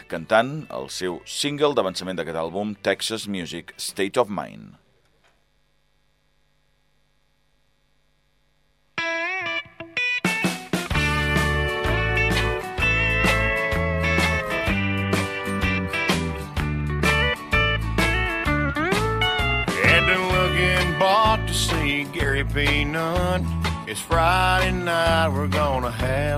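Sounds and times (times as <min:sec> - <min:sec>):
speech: 0:00.1 - 0:04.8, 0:22.4 - 0:26.3
full band song with driving beat and strong bass: 0:10.3 - 0:26.3.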